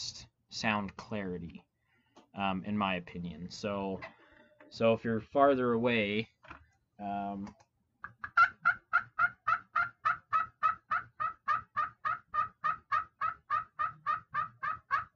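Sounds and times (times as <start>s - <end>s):
speech: 0.6s - 1.7s, 2.4s - 7.6s
turkey clucking made on a pot call while spring turkey hunting: 8.0s - 15.1s.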